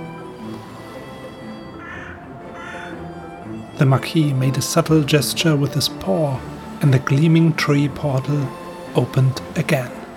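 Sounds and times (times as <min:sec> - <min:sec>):
crow giving harsh screeching raspy caws: 0:01.6 - 0:03.2
speech: 0:03.8 - 0:10.0.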